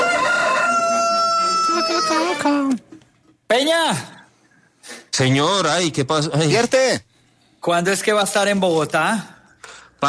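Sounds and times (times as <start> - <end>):
rooster crowing: 0.0 - 2.7
speech: 2.1 - 2.9, 3.5 - 4.2, 4.9 - 9.3.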